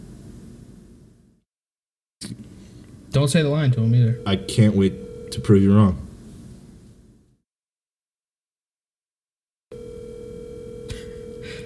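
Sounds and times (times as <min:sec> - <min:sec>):
speech: 0:03.1 - 0:06.0
telephone dial tone: 0:03.8 - 0:05.7, 0:09.7 - 0:11.6.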